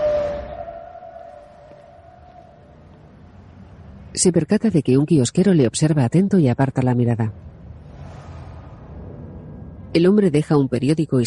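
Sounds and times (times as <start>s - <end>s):
ambulance siren passing at full speed on a Bucharest street: 0.0s - 3.7s
speech: 4.1s - 7.5s, 10.0s - 11.2s.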